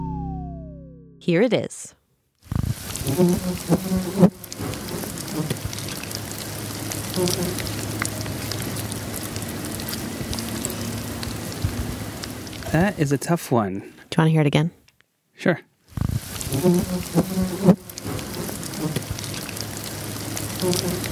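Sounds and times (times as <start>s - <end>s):
speech: 1.2s - 2.0s, 3.1s - 4.4s, 7.2s - 7.9s, 12.7s - 14.8s, 15.4s - 17.8s, 20.6s - 21.1s
fly buzzing around worms in a worm farm in a garage: 2.9s - 11.5s, 16.0s - 21.1s.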